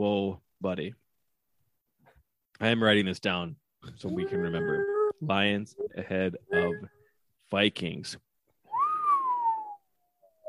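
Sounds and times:
speech: 0.0 - 1.0, 2.6 - 8.2
person whistling: 8.7 - 10.4.

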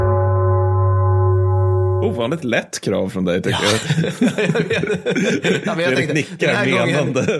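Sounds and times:
deep resonant gong ringing: 0.0 - 2.0
speech: 2.0 - 7.3
laughter: 3.5 - 7.3.

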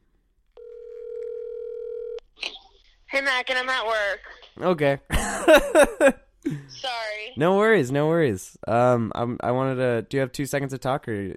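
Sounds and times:
telephone ringing tone as a call is placed: 0.6 - 2.2
speech: 3.2 - 11.3.

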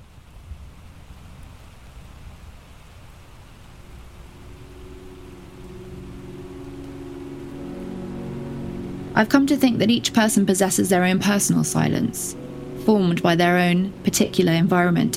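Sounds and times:
steady heavy rain downpour: 0.0 - 15.1
speech: 9.2 - 15.1.

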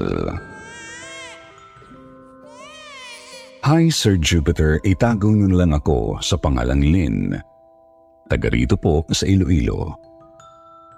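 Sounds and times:
speech: 0.0 - 0.5, 3.7 - 7.5, 8.3 - 10.1
baby crying: 0.0 - 4.0.

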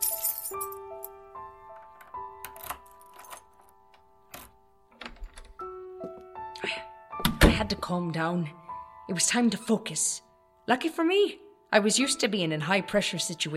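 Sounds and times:
bunch of keys jingling as fumbled out of a pocket: 0.0 - 1.1, 1.8 - 5.5
speech: 7.7 - 13.5.

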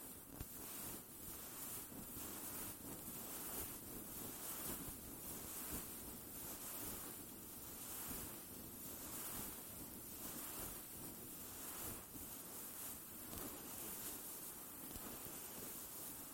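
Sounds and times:
faint airy hiss: 0.0 - 16.3
hands massaging the microphone with soft rubbing and brushing: 0.4 - 7.2, 7.8 - 9.6, 10.2 - 10.9, 11.5 - 16.3.

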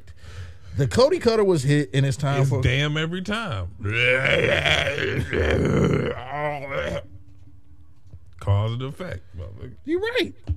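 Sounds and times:
speech: 0.8 - 7.1, 8.4 - 10.5
loud croaking burp after drinking beer: 3.8 - 7.0.

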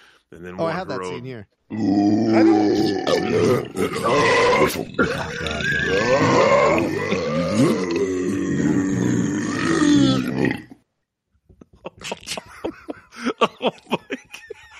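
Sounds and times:
speech: 0.3 - 9.2
many recorded burps of one person layered together: 1.7 - 10.9
laughter: 11.6 - 14.7.

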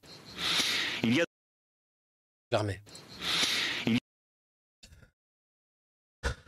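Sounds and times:
strained rasping breaths against a microphone: 0.1 - 1.0, 3.0 - 3.9
speech: 1.0 - 1.3, 2.5 - 4.0.

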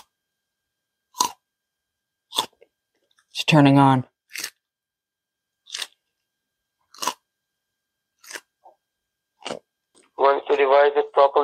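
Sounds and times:
loud crunchy chewing: 1.1 - 1.4, 2.3 - 3.2, 4.2 - 4.6, 5.6 - 6.1, 6.8 - 7.3, 8.2 - 8.8, 9.4 - 10.2
speech: 3.4 - 4.1.

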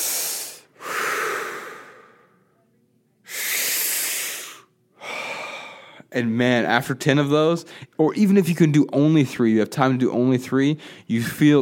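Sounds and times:
rapid deep breathing in and out during a breathing exercise: 0.0 - 2.5, 3.3 - 6.1, 10.8 - 11.1
speech: 6.1 - 11.5.

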